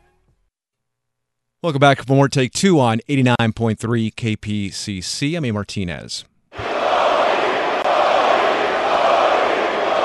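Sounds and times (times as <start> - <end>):
speech: 1.6 - 6.3
large crowd roaring and chanting in a big arena: 6.6 - 10.0.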